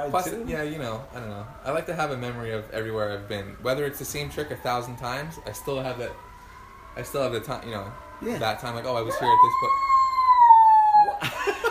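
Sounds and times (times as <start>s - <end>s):
speech: 0.0s - 6.3s, 7.0s - 9.9s
emergency vehicle siren wailing while passing outside: 0.0s - 11.7s
voices or laughter: 10.9s - 11.7s.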